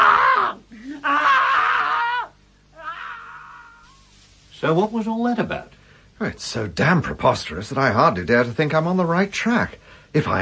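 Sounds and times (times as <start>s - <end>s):
woman screaming on finding a bleeding man in a lift: 0.0s - 3.9s
speech: 4.6s - 10.4s.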